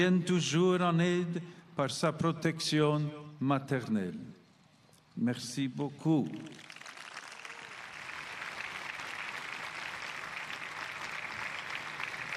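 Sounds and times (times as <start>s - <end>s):
speech: 0.0s - 4.3s, 5.2s - 6.6s
large crowd applauding after a speech: 6.4s - 12.3s.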